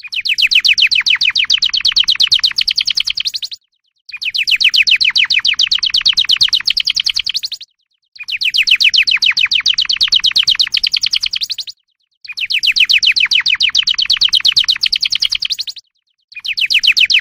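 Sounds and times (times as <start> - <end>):
Atlantic canary singing rolling trills: 0.0 - 17.2.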